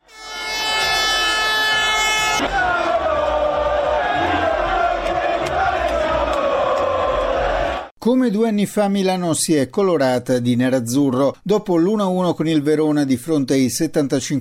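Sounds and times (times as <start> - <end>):
shrill tones: 0.0 - 2.4
sustained horn blaring: 0.0 - 6.2
crowd of football fans roaring in city streets at night: 0.4 - 7.9
speech: 2.4 - 2.7, 8.0 - 14.3.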